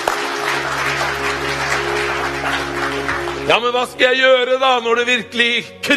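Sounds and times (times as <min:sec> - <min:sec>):
audience cheering and applauding: 0:00.0 - 0:04.1
speech: 0:03.5 - 0:05.9.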